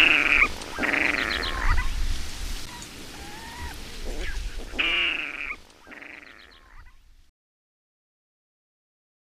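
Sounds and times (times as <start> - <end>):
water rail squealing calls: 0.0 - 2.0, 2.7 - 7.0.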